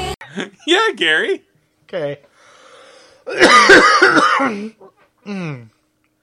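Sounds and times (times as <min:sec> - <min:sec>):
speech: 0:00.3 - 0:02.3, 0:03.3 - 0:05.7
person coughing: 0:03.3 - 0:05.7.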